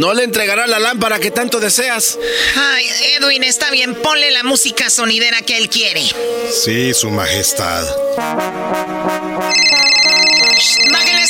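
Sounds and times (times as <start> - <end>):
speech: 0.0 - 10.3
bright sustained high-pitched tones: 9.4 - 11.2
telephone ringing with melodic electronic tune: 9.5 - 11.2.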